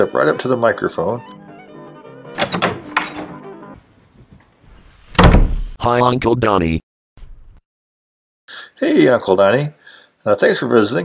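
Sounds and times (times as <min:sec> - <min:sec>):
speech: 0:00.0 - 0:01.4, 0:05.8 - 0:06.9, 0:08.8 - 0:11.0
door being opened with latch clicks: 0:02.4 - 0:03.4, 0:05.1 - 0:05.7.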